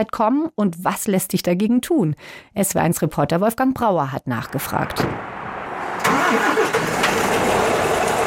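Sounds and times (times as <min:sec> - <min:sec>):
speech: 0:00.0 - 0:05.3, 0:06.3 - 0:06.8
truck engine starting and idling at a truck stop in Römerberg, Germany: 0:04.8 - 0:08.2.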